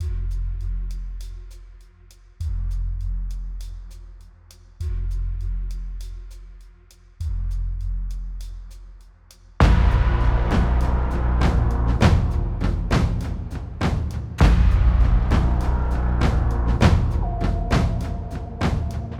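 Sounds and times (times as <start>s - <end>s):
cinematic drum tones: 0.0s - 1.8s, 2.4s - 8.8s, 9.5s - 19.1s.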